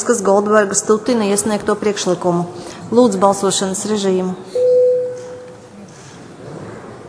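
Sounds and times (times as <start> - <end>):
speech: 0.0 - 4.6
electronic bell tone: 4.5 - 5.6.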